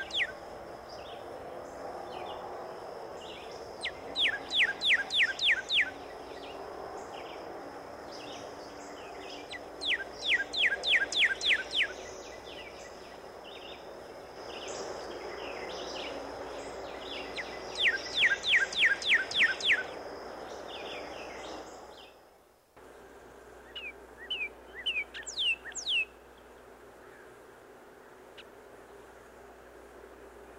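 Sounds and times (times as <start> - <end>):
cardinal song of clear whistled notes sliding downward: 0.0 - 0.4, 3.8 - 6.5, 9.5 - 12.7, 17.0 - 20.0, 23.7 - 26.2.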